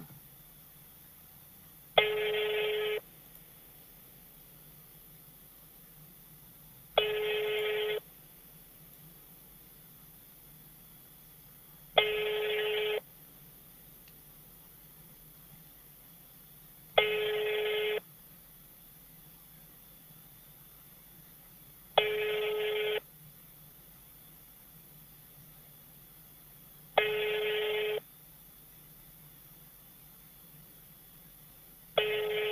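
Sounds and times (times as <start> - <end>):
faint hiss: 0.0 - 32.5
telephone call ringing unanswered: 2.0 - 3.1, 7.0 - 8.1, 12.0 - 13.1, 17.0 - 18.1, 22.0 - 23.1, 27.0 - 28.1, 32.0 - 32.5.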